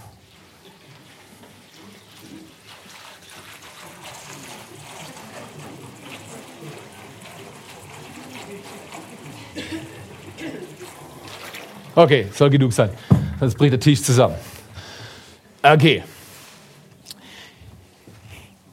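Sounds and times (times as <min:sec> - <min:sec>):
water sloshing and splashing in a basin: 0:00.0 - 0:14.7
speech: 0:12.0 - 0:14.5, 0:15.6 - 0:16.1.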